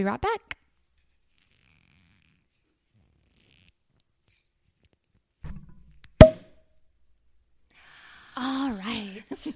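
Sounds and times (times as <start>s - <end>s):
speech: 0.0s - 0.6s, 8.4s - 9.5s
champagne cork popping from bottle: 5.5s - 6.6s.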